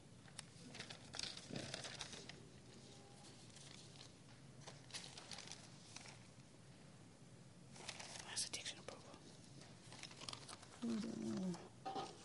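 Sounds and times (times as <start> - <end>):
small pieces of paper with scriptures being shuffled and rustled: 0.3 - 6.3, 7.7 - 8.7, 9.5 - 12.2.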